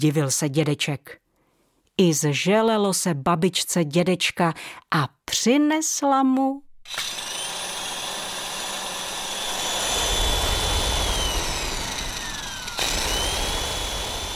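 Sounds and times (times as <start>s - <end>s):
speech: 0.0s - 1.2s, 2.0s - 7.2s
electric kitchen blender running: 6.9s - 14.3s.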